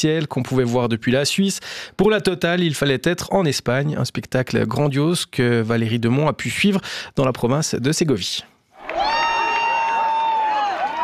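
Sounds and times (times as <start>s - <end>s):
speech: 0.0s - 9.1s
crowd cheering in an agricultural field at a total solar eclipse: 8.8s - 11.0s
long sustained high cry: 8.8s - 11.0s.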